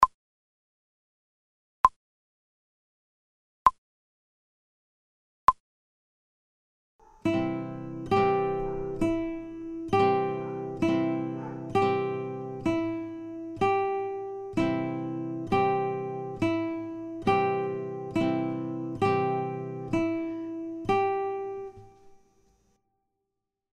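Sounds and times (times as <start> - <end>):
slow guitar study without metronome: 7.0 - 22.3.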